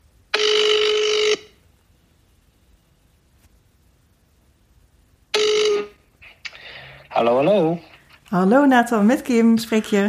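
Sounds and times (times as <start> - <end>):
telephone line tones while a call is placed: 0.4 - 1.6, 5.4 - 6.0
speech: 7.2 - 10.0.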